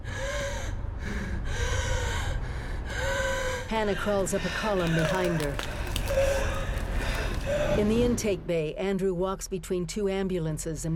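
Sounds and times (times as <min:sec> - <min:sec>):
woman gasping and struggling for breath: 0:00.0 - 0:07.8
speech: 0:03.7 - 0:06.4, 0:07.5 - 0:10.9.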